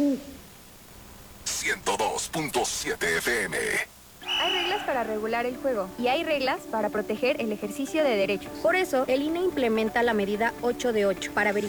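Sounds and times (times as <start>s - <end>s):
owl hooting: 0.0s - 0.4s, 4.2s - 5.4s
faint hiss: 0.0s - 11.6s
speech: 1.6s - 11.6s.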